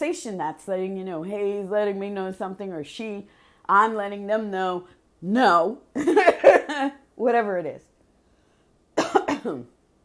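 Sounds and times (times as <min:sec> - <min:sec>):
speech: 0:00.0 - 0:07.9, 0:09.4 - 0:09.7
person clearing throat: 0:09.0 - 0:09.7.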